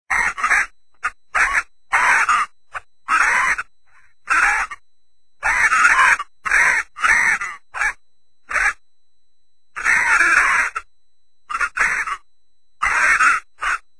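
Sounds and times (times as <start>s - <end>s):
parrot squawking: 0.1s - 3.7s, 4.3s - 4.8s, 5.4s - 8.8s, 9.8s - 10.9s, 11.5s - 12.2s, 12.8s - 13.8s.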